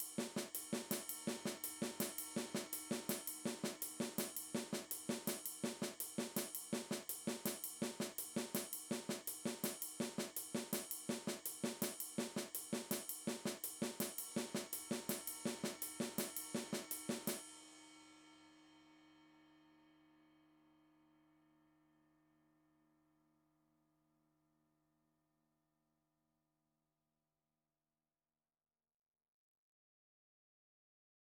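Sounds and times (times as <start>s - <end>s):
snare drum comping shuffle: 0.0s - 17.4s.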